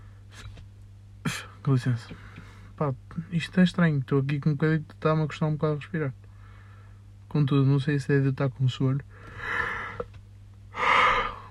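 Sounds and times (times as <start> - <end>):
speech: 1.6 - 6.2, 7.3 - 9.6
person yawning: 10.8 - 11.5.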